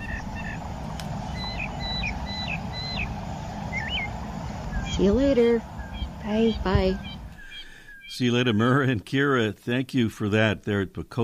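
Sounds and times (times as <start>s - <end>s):
steady low rumbling background: 0.0s - 8.3s
tundra swans, bald eagles, mockingbirds and sparrows calling at a North Carolina wetland: 0.0s - 8.6s
speech: 5.0s - 7.1s, 8.1s - 11.2s.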